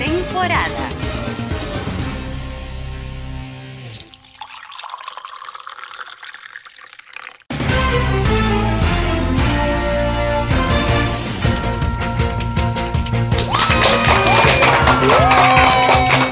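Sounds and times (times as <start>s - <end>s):
loud upbeat music: 0.0s - 2.9s, 7.5s - 16.3s
crowd applause: 13.3s - 16.3s.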